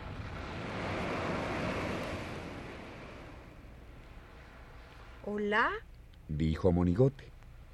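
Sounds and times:
wind gusting across the microphone: 0.0 - 4.8
surf washing onto a beach: 0.0 - 5.4
speech: 5.2 - 7.3.

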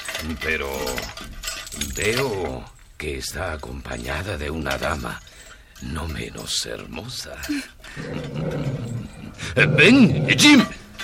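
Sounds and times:
speech: 0.2 - 10.8
frightened dog growling: 8.0 - 10.7.

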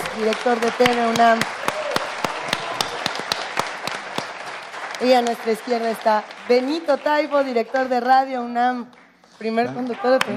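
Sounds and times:
audience applauding to welcome radio and television directors: 0.0 - 8.0
speech: 0.2 - 1.6, 5.0 - 10.3.

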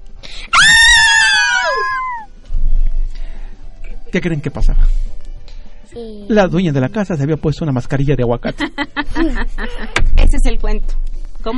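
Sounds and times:
person's loud shrill acted scream: 0.5 - 2.3
speech: 4.1 - 5.2, 5.9 - 11.5
laughter: 8.4 - 10.0.

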